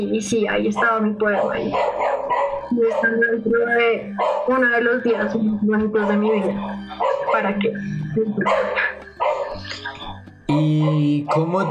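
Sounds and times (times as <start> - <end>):
speech: 0.0 - 8.8, 10.5 - 11.6
dog barking: 0.7 - 3.4, 4.0 - 7.7, 8.4 - 9.7, 10.8 - 11.6.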